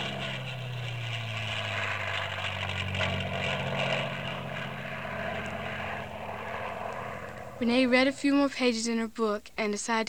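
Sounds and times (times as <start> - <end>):
propeller airplane droning overhead: 0.0 - 9.0
speech: 7.6 - 10.0.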